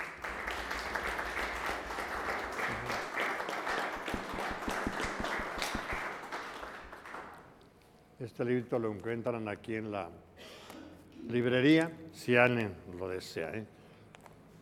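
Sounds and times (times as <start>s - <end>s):
audience applause with many hands clapping: 0.0s - 7.5s
sharp individual claps: 0.0s - 7.6s
speech: 8.3s - 10.3s, 11.3s - 13.8s.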